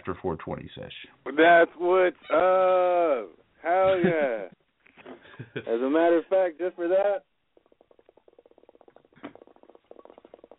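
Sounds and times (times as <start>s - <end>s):
speech: 0.0s - 4.6s, 5.4s - 7.3s
laughter: 1.3s - 4.5s, 5.2s - 5.8s
percolating water pipe bubbling: 7.0s - 10.5s.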